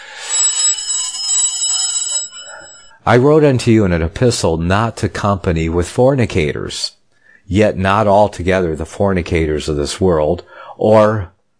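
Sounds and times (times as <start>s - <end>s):
telephone bell ringing shrill and metallic: 0.0s - 3.0s
speech: 3.1s - 11.3s.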